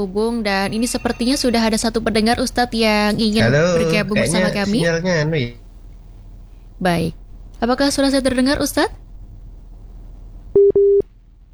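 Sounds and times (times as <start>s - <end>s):
speech: 0.0s - 5.6s, 6.8s - 9.0s
hiss: 0.0s - 11.5s
laughter: 2.8s - 5.6s
telephone busy signal on a failed call: 10.6s - 11.0s.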